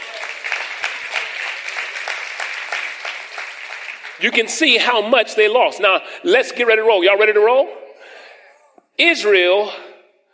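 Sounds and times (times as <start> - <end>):
audience hand clapping: 0.0 - 4.9
speech: 4.2 - 7.8, 9.0 - 9.8.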